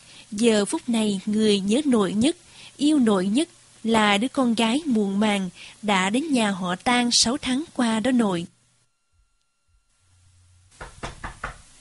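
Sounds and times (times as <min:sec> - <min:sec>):
speech: 0:00.3 - 0:08.6
knocking on a door: 0:10.8 - 0:11.7.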